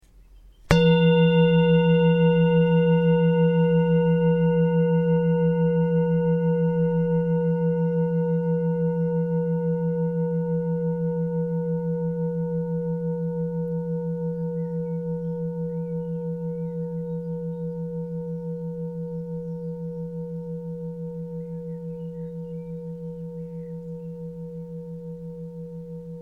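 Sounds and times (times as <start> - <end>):
singing bowl ringing: 0.7 - 26.1.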